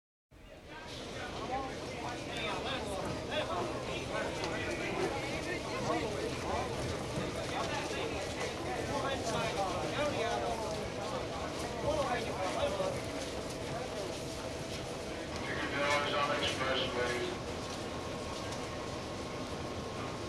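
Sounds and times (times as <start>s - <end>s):
subway train in New York: 0.4s - 20.2s.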